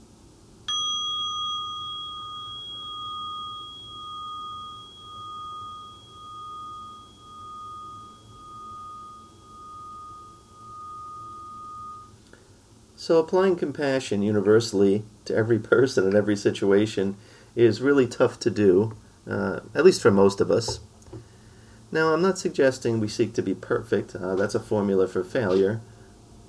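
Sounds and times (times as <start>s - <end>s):
mindfulness bell ringing: 0.7s - 12.1s
speech: 13.0s - 20.9s, 21.9s - 25.9s.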